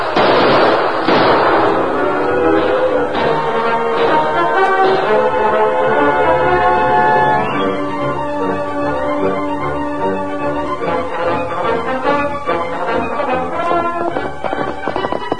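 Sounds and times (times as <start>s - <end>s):
sharp loud gunshots: 0.0s - 6.2s, 13.6s - 15.3s
steady droning tonal background: 1.5s - 15.3s.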